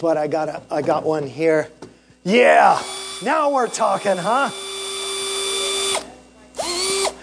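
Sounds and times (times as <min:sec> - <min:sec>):
speech: 0:00.0 - 0:04.6
screwdriver with changeable bits driving screws: 0:02.6 - 0:07.2.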